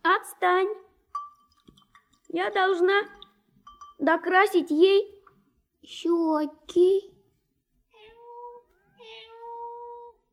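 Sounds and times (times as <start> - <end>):
speech: 0.4 - 0.8, 2.3 - 3.2, 4.0 - 5.2, 5.8 - 7.1
cat meowing to be let in: 7.9 - 10.3.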